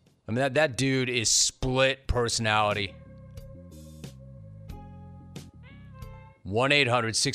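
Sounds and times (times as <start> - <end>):
speech: 0.3 - 3.0, 6.5 - 7.3
cat meowing: 5.6 - 6.3.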